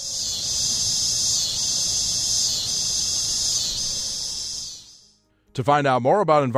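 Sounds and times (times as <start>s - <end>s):
cicadas buzzing in trees: 0.0s - 5.1s
speech: 5.6s - 6.5s.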